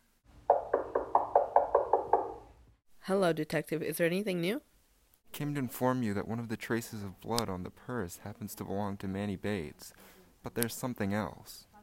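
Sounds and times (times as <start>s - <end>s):
firm knocks on a wooden door: 0.5s - 2.5s
speech: 3.1s - 4.7s, 5.3s - 11.7s.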